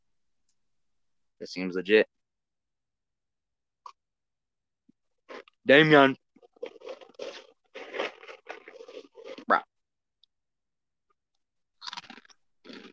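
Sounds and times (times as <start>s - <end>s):
speech: 1.4s - 2.2s, 5.6s - 6.2s
crunching and chewing goldfish crackers: 5.2s - 9.6s, 11.8s - 12.9s.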